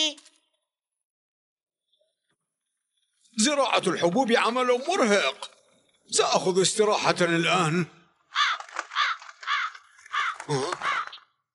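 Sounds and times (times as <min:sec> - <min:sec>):
speech: 0:03.4 - 0:08.0, 0:10.5 - 0:10.9
crows cawing over freshly planted grain seeds: 0:08.2 - 0:11.4.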